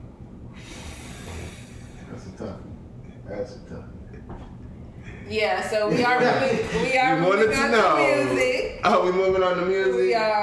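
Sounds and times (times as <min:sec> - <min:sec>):
nose blowing: 0:00.5 - 0:02.1
speech: 0:02.4 - 0:02.7, 0:03.3 - 0:04.6, 0:05.3 - 0:10.4.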